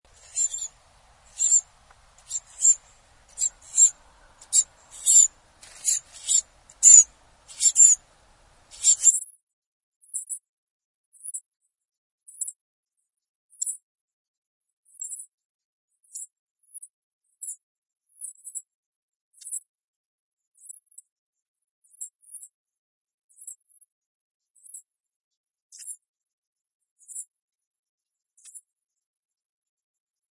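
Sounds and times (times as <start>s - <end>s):
wren chick calling: 0.1s - 9.2s.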